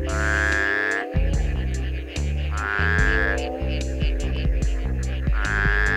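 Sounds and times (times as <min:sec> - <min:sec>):
shovel-headed tree frog giving low nasal honking calls: 0:00.0 - 0:05.9.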